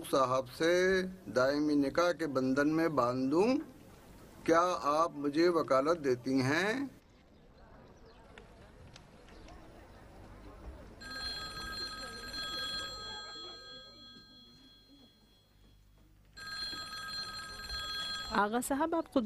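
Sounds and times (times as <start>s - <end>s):
speech: 0.0s - 3.7s, 4.4s - 7.0s, 18.4s - 19.2s
low bustle: 0.0s - 19.2s
room full of murmuring voices: 7.5s - 18.4s
telephone ringing with trilling bell tones: 11.0s - 18.7s.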